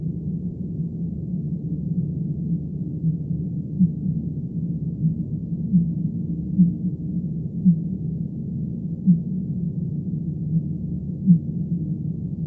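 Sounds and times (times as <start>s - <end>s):
constant low rumbling: 0.0s - 12.4s
fin whale B physalus low pulses: 0.0s - 12.4s.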